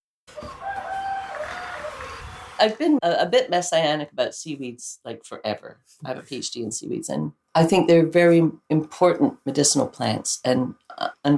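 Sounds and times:
rooster crowing on a farm: 0.3s - 2.6s
speech: 2.6s - 11.3s.

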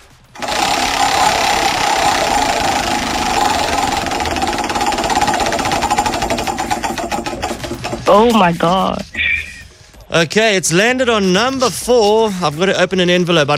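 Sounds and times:
prize wheel being spun in a game: 0.4s - 8.9s
speech: 8.1s - 9.1s, 10.1s - 13.5s.

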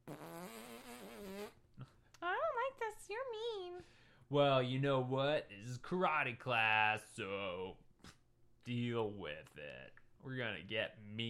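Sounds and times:
drawn-out buzzing fart: 0.0s - 1.9s
speech: 3.1s - 7.8s, 8.7s - 11.2s.

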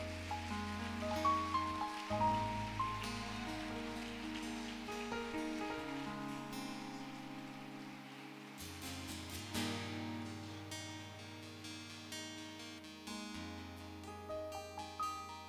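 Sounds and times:
steady rain pattering: 0.0s - 12.8s
sustained keyboard chords: 0.0s - 15.4s.

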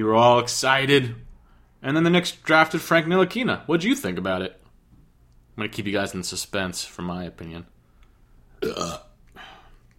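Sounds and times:
speech: 0.0s - 1.2s, 1.8s - 4.6s, 5.6s - 7.7s, 8.6s - 9.5s
loud burp: 8.6s - 9.2s.

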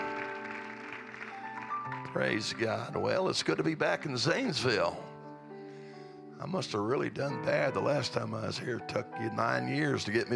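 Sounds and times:
audience clapping: 0.0s - 3.0s
speech: 2.1s - 5.1s, 6.4s - 10.3s.

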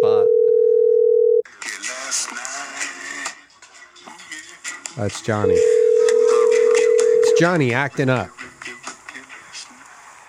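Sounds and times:
telephone dial tone of outgoing call: 0.0s - 1.4s, 5.5s - 7.4s
speech: 5.0s - 5.8s, 7.4s - 8.4s
phone-filtered voice talking: 5.0s - 8.3s.

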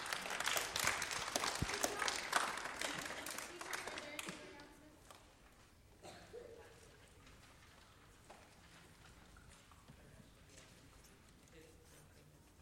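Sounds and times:
crowd applauding: 0.0s - 4.8s.

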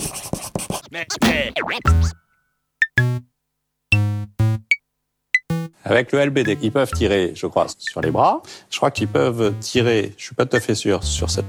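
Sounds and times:
scratchy swirling sound effects in a podcast jingle: 0.0s - 2.1s
speech: 0.9s - 2.2s, 5.9s - 11.4s
bouncy buzzy synth notes with bright pings in a podcast jingle: 1.2s - 2.2s, 2.8s - 3.3s, 3.9s - 4.8s, 5.4s - 5.8s, 6.5s - 7.3s, 7.9s - 8.3s, 9.0s - 10.1s, 11.0s - 11.4s.

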